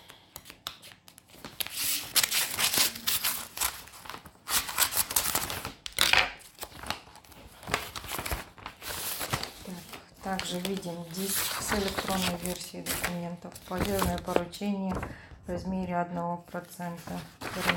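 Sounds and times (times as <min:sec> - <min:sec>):
paper envelope being torn open: 0:01.5 - 0:14.4, 0:17.4 - 0:17.7
speech: 0:10.3 - 0:17.7.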